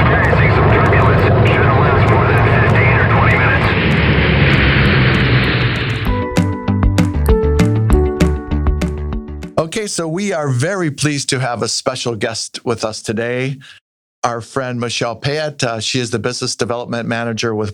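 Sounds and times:
airplane engine roaring in flight: 0.0s - 6.8s
upbeat music with punchy beats: 4.8s - 9.6s
speech: 9.8s - 17.7s.

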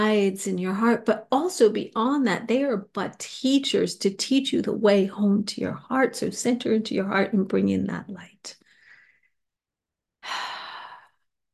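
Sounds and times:
speech: 0.0s - 8.6s
soft breath taken during a guided heart-centering meditation: 8.6s - 9.4s, 10.2s - 11.3s.

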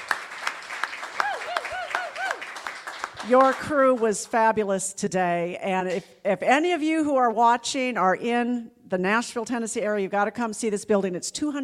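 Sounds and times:
audience applauding: 0.0s - 4.2s
speech: 3.2s - 11.6s.

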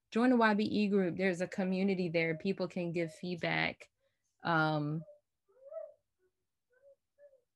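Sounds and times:
speech: 0.1s - 5.1s
dog whimpering with thin high whines: 5.0s - 7.5s.

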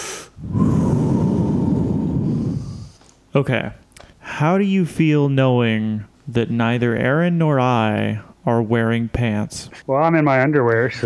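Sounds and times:
person taking a long steady breath in before answering: 0.0s - 3.2s
speech: 3.4s - 3.8s, 4.4s - 11.0s.

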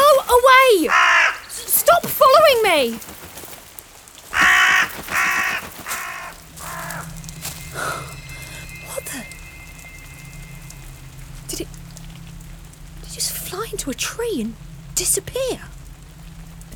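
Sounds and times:
crow cawing: 0.4s - 1.7s, 4.3s - 10.4s
speech: 2.7s - 3.2s
low rumble of noise: 5.7s - 16.7s.

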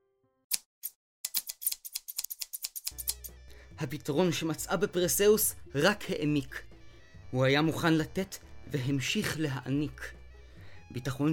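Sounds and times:
scissors snipping through hair: 0.5s - 3.4s
speech: 3.8s - 6.7s, 7.3s - 10.2s, 10.9s - 11.3s.

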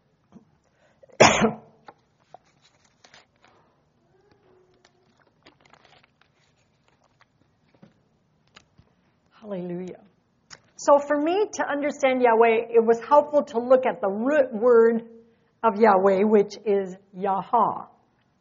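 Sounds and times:
person coughing from a tickle in the throat: 1.0s - 1.8s
speech: 1.4s - 1.6s, 10.8s - 17.9s.

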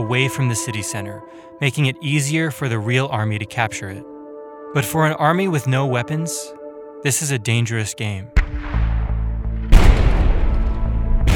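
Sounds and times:
speech: 0.1s - 4.1s, 4.7s - 8.8s
loud explosions: 8.4s - 11.3s.

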